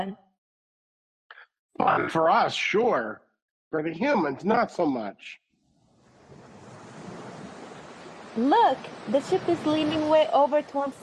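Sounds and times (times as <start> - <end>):
speech: 0.0 - 0.2, 1.8 - 5.4, 8.4 - 11.0
storm wind: 5.6 - 11.0
ocean waves churning in a storm: 5.8 - 11.0.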